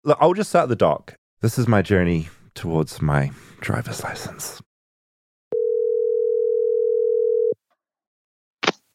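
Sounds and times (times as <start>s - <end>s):
speech: 0.0s - 4.7s
telephone dial tone of an outgoing phone call: 5.5s - 7.6s.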